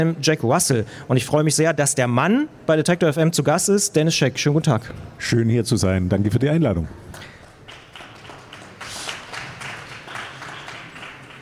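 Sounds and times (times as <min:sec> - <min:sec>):
speech: 0:00.0 - 0:07.4
audience applause at a book fair: 0:07.2 - 0:11.4.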